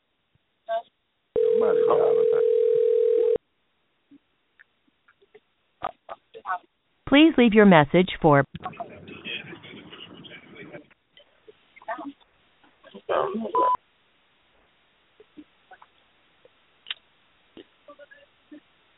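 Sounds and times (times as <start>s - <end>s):
phone number dialing tone beeps: 1.4s - 3.4s
speech: 7.1s - 8.7s.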